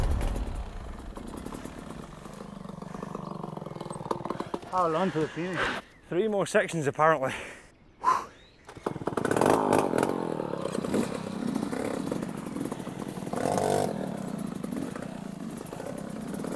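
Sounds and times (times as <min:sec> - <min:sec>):
two-stroke motorbike engine revving during an off-road race: 0:00.0 - 0:04.7, 0:08.7 - 0:16.5
speech: 0:04.7 - 0:07.6.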